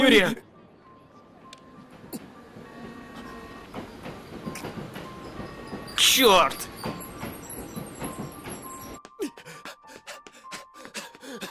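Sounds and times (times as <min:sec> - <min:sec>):
speech: 0:00.0 - 0:00.4, 0:06.0 - 0:06.7
train arriving at a station platform rumbling: 0:00.0 - 0:09.0
train wheels and brakes clacking and squeaking: 0:00.5 - 0:09.0.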